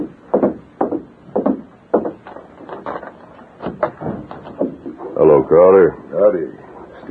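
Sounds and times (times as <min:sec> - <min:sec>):
hotel room door being opened with wooden thumps rattles and creaks: 0:00.0 - 0:05.4
speech: 0:05.2 - 0:07.1.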